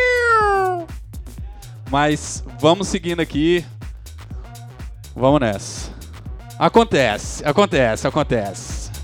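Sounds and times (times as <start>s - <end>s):
cat meowing in a studio: 0.0s - 0.9s
speech: 1.9s - 3.8s, 5.2s - 6.0s, 6.6s - 8.7s.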